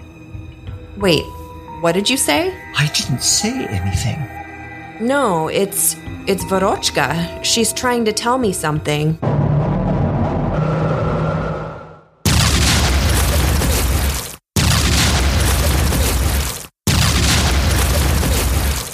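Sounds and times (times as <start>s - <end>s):
speech: 1.0s - 4.4s, 5.0s - 9.3s
low humming drone: 2.3s - 7.4s
loud rumbling explosions of missiles launched at a base: 9.2s - 18.9s.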